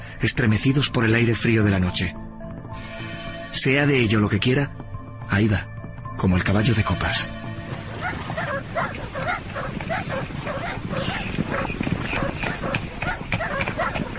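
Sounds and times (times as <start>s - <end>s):
speech: 0.2s - 2.3s, 3.5s - 7.4s, 8.1s - 11.3s
hunting dogs barking as a pack during a hunt on a mountain at nightfall: 7.7s - 14.1s.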